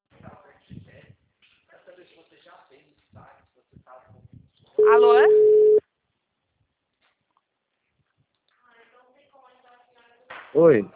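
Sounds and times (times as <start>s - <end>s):
speech: 4.8s - 5.5s, 10.5s - 10.9s
telephone busy tone beep after a call disconnected: 4.8s - 5.8s.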